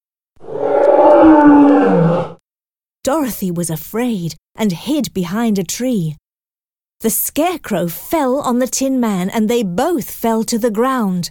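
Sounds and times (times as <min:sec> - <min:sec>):
fierce lion roaring: 0:00.4 - 0:02.4
speech: 0:03.1 - 0:06.2, 0:07.0 - 0:11.2.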